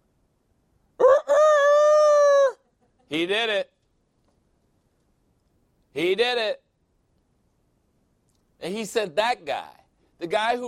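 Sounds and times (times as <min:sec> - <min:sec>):
rooster crowing: 0:01.0 - 0:02.7
speech: 0:03.1 - 0:03.7, 0:06.0 - 0:06.6, 0:08.6 - 0:10.6.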